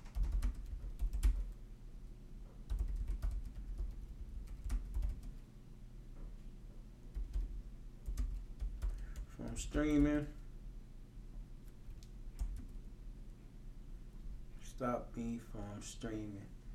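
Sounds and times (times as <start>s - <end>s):
typing on a computer keyboard: 0.0s - 1.6s, 2.7s - 5.4s, 7.1s - 10.4s, 11.7s - 12.8s
speech: 9.6s - 10.4s, 14.8s - 16.6s.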